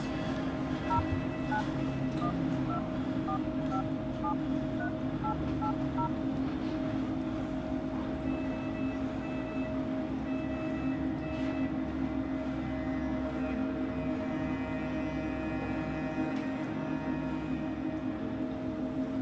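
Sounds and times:
steady low hum of noise: 0.0s - 19.2s
mobile phone keypad dialing tones: 0.9s - 6.1s.

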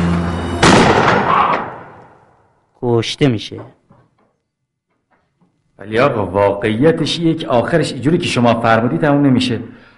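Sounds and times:
single loud gunshot with rumbling echo: 0.6s - 2.2s
speech: 3.0s - 3.8s, 5.8s - 9.8s.

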